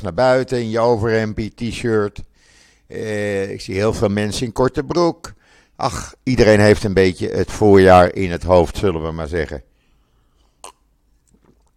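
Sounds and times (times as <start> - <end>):
speech: 0.0 - 2.3, 2.9 - 9.7
soft faint swallowing of water: 10.4 - 11.7
wet mouth click while sipping water: 10.6 - 11.7.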